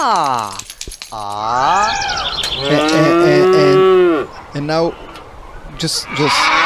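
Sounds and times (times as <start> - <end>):
speech: 0.0 - 3.4, 4.6 - 5.1, 5.8 - 6.6
higher overlapping animal calls: 1.2 - 6.6
cows mooing loudly: 1.4 - 4.3, 6.0 - 6.6.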